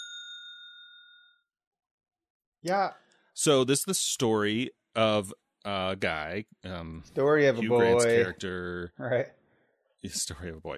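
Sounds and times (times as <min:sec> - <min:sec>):
bright metallic bell ding: 0:00.0 - 0:01.5
speech: 0:02.6 - 0:09.4, 0:10.0 - 0:10.7.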